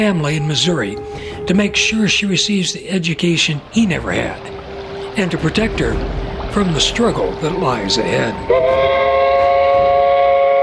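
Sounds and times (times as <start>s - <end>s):
steamboat whistle blast: 0.0s - 2.8s, 7.6s - 10.6s
speech: 0.0s - 4.6s, 5.2s - 8.9s.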